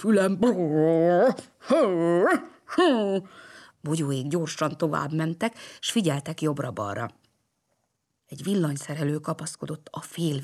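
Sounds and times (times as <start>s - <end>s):
speech: 0.0s - 7.2s, 8.3s - 10.4s
person imitating a boxer dog's angry growl: 0.4s - 3.0s.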